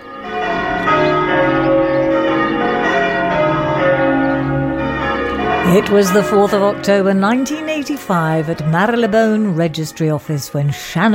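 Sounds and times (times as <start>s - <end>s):
several church bells pealing for a wedding: 0.0s - 11.1s
speech: 5.7s - 11.1s.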